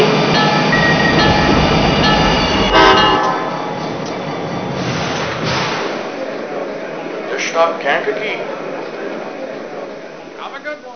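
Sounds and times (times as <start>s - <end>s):
passenger train rumbling and clattering into a station: 0.0s - 10.9s
passenger train horn blast: 2.7s - 3.6s
speech: 7.6s - 8.7s.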